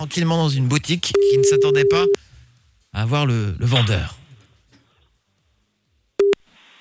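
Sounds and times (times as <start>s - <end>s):
speech: 0.0s - 2.2s, 3.0s - 4.2s
short steady low-pitched telephone tone as a call is placed: 1.2s - 2.2s.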